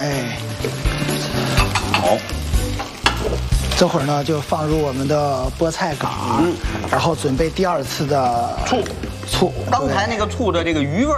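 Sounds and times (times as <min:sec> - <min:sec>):
pork stir-frying in a wok as starch slurry is poured in: 0:00.0 - 0:10.6
scraping and stirring in a wok: 0:00.6 - 0:03.9
speech: 0:03.8 - 0:11.1.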